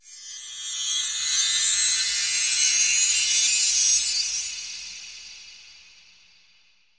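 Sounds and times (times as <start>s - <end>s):
bell tree: 0.0s - 5.3s.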